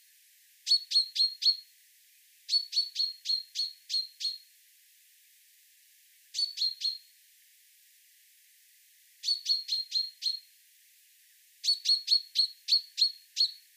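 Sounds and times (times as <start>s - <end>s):
common chaffinch chirping: 0.7s - 1.6s, 2.5s - 4.5s, 6.3s - 7.1s, 9.2s - 10.5s, 11.6s - 13.6s.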